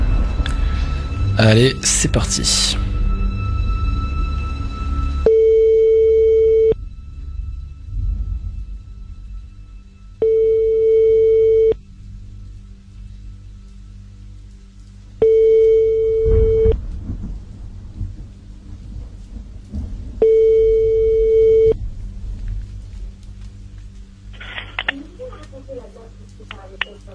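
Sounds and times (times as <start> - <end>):
low rumble: 0.0 - 27.1
speech: 1.4 - 2.9
ringback tone of an outgoing telephone call: 5.2 - 6.8, 10.2 - 11.8, 15.2 - 16.8, 20.2 - 21.8.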